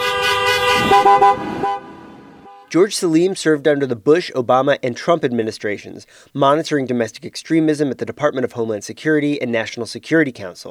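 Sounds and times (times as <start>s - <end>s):
car horns honked by protesters outside a state Capitol: 0.0s - 2.8s
speech: 2.7s - 10.6s.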